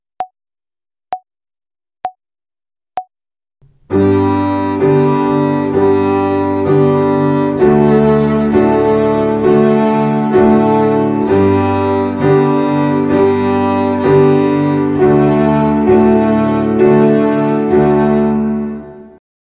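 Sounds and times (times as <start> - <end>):
violin finger exercise on the G string: 3.6 - 19.2.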